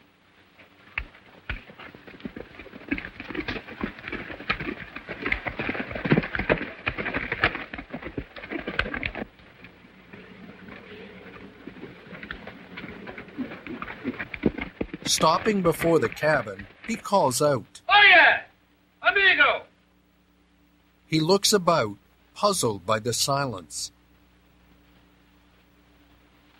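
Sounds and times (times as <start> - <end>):
pony hooves clip-clopping downhill: 0.4 - 17.7
speech: 15.2 - 18.4, 21.1 - 24.0.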